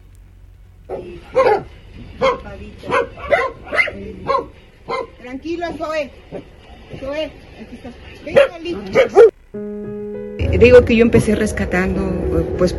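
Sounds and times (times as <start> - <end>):
rescued dogs at a dog rescue barking and yipping: 0.9 - 6.6, 8.2 - 9.4
speech: 1.0 - 12.7.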